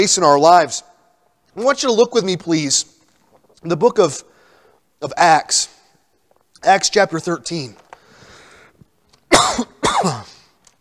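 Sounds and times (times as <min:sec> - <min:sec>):
speech: 0:00.0 - 0:00.9, 0:01.6 - 0:03.0, 0:03.6 - 0:04.3, 0:05.0 - 0:05.8, 0:06.6 - 0:07.8, 0:09.6 - 0:10.3
preacher coughing loudly and harshly: 0:09.3 - 0:10.6
throat clearing with a soft breathy rasp: 0:09.3 - 0:10.6.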